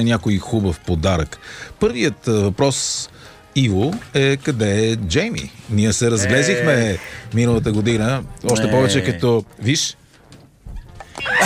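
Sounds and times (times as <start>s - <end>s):
speech: 0.0s - 10.0s
goat bleat: 6.2s - 7.1s.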